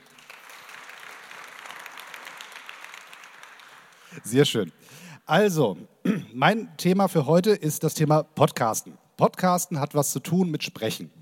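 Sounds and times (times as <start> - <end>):
crowd applauding: 0.0 - 4.5
speech: 4.1 - 11.2.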